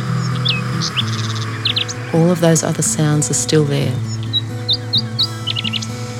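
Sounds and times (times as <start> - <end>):
birds chirping and singing: 0.0 - 6.1
speech: 0.8 - 1.2, 2.1 - 4.2
person speaking calmly: 2.1 - 4.0.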